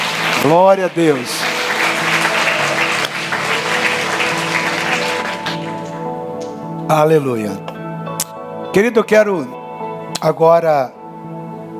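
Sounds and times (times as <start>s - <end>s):
audience applauding: 0.0s - 6.6s
low musical drone or keyboard tones: 0.0s - 10.2s
speech: 0.4s - 1.4s, 6.9s - 7.7s, 8.7s - 9.6s, 10.2s - 11.4s.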